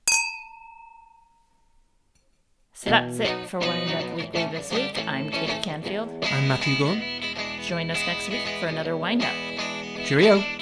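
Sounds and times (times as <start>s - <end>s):
glasses clinking in a toast: 0.0s - 1.5s
glass ringing tone: 0.0s - 2.0s
speech: 2.8s - 9.4s, 10.1s - 10.6s.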